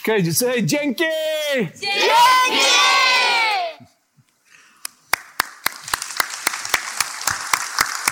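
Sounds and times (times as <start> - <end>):
speech: 0.0 - 3.0
group of voices cheering at a camp in Zimbabwe: 1.8 - 3.8
hands clapping in a steady rhythm: 4.8 - 8.1.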